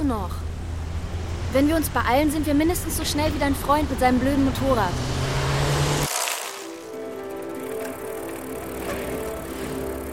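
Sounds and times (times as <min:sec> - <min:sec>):
speech: 0:00.1 - 0:00.4, 0:01.5 - 0:05.3
bicycle being ridden, whirring and rattling: 0:00.8 - 0:10.1.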